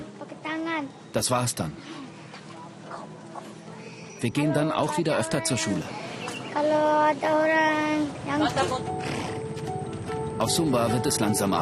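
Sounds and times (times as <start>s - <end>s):
steady outdoor noise on a beach on Sumba: 0.0s - 11.6s
speech: 0.8s - 2.1s, 4.2s - 9.2s, 10.4s - 11.6s
horses neighing while running laps on a beach on Sumba in the evening: 8.8s - 9.5s.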